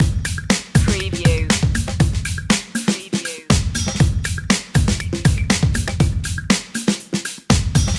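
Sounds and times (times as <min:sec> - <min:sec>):
energetic funky drum loop: 0:00.0 - 0:07.9.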